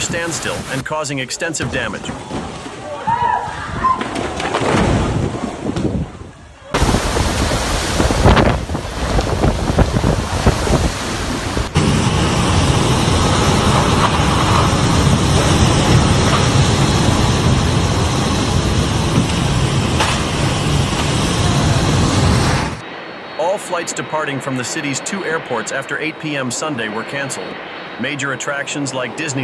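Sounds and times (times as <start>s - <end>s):
driving rain of a typhoon: 0.0s - 1.0s, 6.8s - 22.8s
typhoon wind buffeting the microphone: 0.0s - 1.0s, 1.6s - 29.4s
speech: 0.1s - 2.6s, 23.9s - 29.4s.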